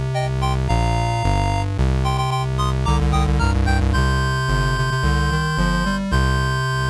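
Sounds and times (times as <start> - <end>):
bright synthesized video game publisher logo fanfare: 0.2 - 6.8
quick chiptune blips: 1.3 - 6.6.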